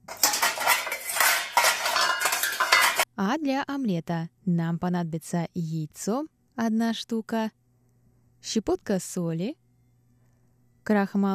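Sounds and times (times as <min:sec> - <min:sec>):
metal utensils scraping and clinking against a saucepan while stirring flour-thickened sauce: 0:00.0 - 0:03.0
speech: 0:03.2 - 0:07.6, 0:08.4 - 0:09.6, 0:10.9 - 0:11.3.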